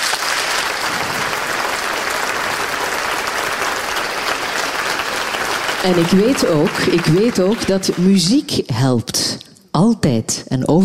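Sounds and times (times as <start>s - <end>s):
large audience applauding in a theatre: 0.0s - 8.5s
speech: 5.8s - 10.8s.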